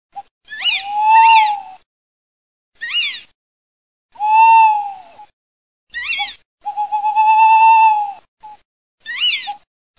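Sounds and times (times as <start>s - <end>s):
tawny owl and little owl calling: 0.5s - 1.8s, 2.8s - 3.3s, 5.9s - 8.2s, 9.0s - 9.6s.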